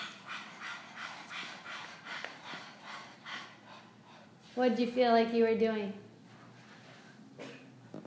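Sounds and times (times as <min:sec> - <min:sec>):
person panting rapidly as a breathing exercise: 0:00.0 - 0:04.4
speech: 0:04.6 - 0:06.1.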